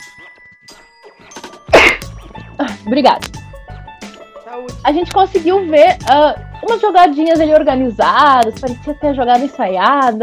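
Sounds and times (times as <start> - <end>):
person sneezing: 1.7 - 2.1
speech: 2.8 - 3.3, 4.6 - 10.2.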